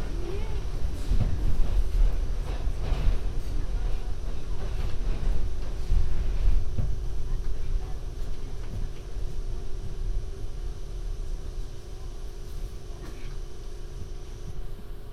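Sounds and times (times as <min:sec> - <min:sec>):
faint voice: 0:00.0 - 0:01.8, 0:07.1 - 0:10.5, 0:11.8 - 0:13.5
rattling clacks of subway cars: 0:00.0 - 0:10.2
subway train rolling between stations with heavy low rumble: 0:00.0 - 0:15.1.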